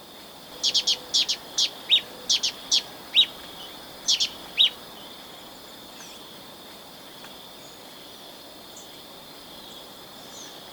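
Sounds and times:
speech: 0.6 - 1.0
olive-chested flycatcher calls in Ecuador: 0.6 - 4.8.

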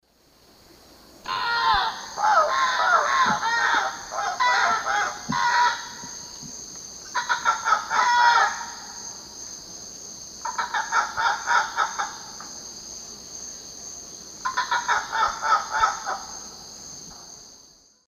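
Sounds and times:
group of Ibycter americanus calling in the Eastern Lowlands: 1.3 - 9.0, 10.4 - 12.5, 14.4 - 16.6.

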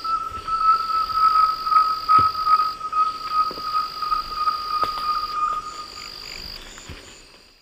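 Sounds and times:
rusty-belted tapaculo Liosceles thoracicus whistling: 0.0 - 6.1
thin high insect drone: 0.0 - 7.6.

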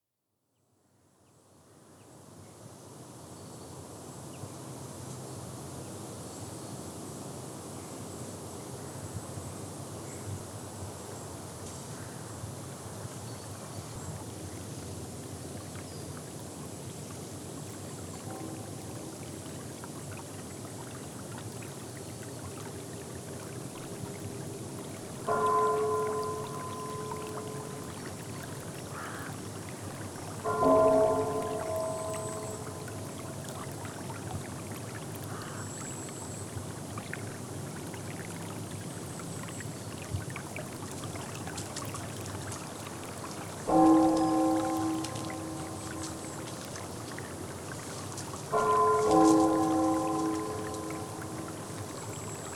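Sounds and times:
rain: 17.4 - 52.5
bell ringing: 25.3 - 28.0, 30.5 - 33.4, 43.7 - 46.6, 48.5 - 52.5.

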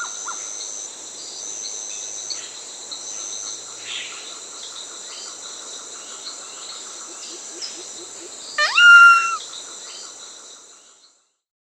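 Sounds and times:
Solitary Cacique whistling call in South America: 8.6 - 9.4.

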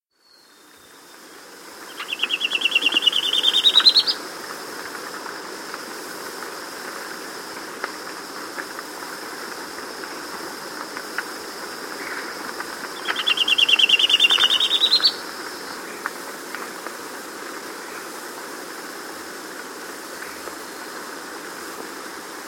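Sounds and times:
Rufous Gnateater in S. America: 1.8 - 4.2, 12.8 - 15.3.

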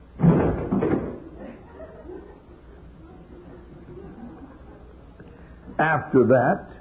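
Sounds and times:
heavy door slamming in the house: 0.2 - 1.4
laughter: 1.2 - 5.6
speech: 5.8 - 6.7.

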